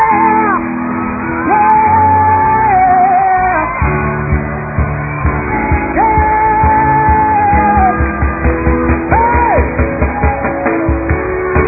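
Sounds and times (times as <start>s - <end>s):
audience shouting and whooping: 0.0s - 11.6s
steady rhythmic thump of music: 3.8s - 11.6s.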